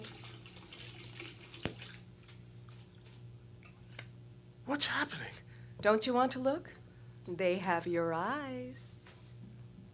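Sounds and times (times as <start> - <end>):
bathtub tap water running: 0.0 - 2.1
water dripping and trickling: 0.0 - 2.6
speech: 4.7 - 8.9.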